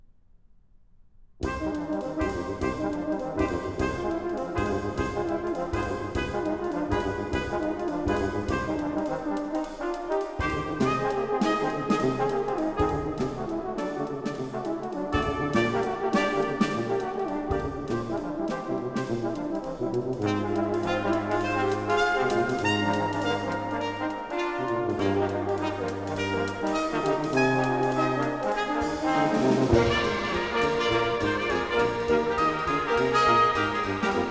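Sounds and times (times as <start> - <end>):
keyboard prelude and fugue: 1.6 - 34.2.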